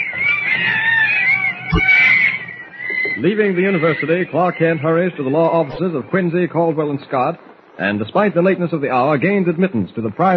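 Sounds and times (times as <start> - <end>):
monkeys chattering and shrieking: 0.0 - 6.7
speech: 1.8 - 2.0, 3.2 - 10.3.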